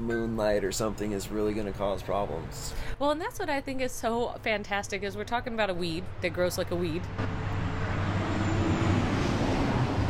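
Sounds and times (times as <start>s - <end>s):
speech: 0.0s - 7.5s
trucks passing by with broadband road noise: 6.0s - 10.0s.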